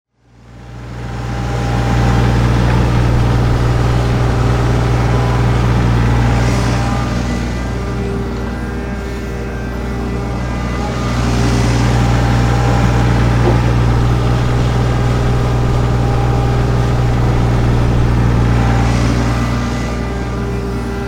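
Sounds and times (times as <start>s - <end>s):
tractor front end loader: 0.3s - 21.0s.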